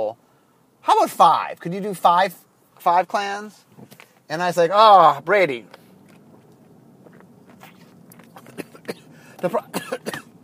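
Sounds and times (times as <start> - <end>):
speech: 0.8 - 5.8, 9.4 - 10.1
person coughing: 8.4 - 10.4.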